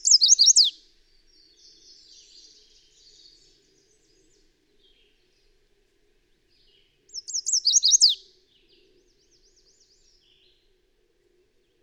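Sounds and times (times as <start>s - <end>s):
very high bird song of quick looping notes: 0.0s - 0.7s, 7.2s - 8.2s.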